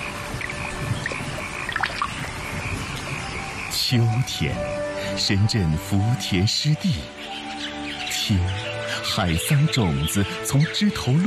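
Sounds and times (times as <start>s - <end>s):
summer midday rain pattering on wet ground and water in an early rice field: 0.0s - 3.2s
speech: 3.9s - 7.4s, 8.3s - 11.2s.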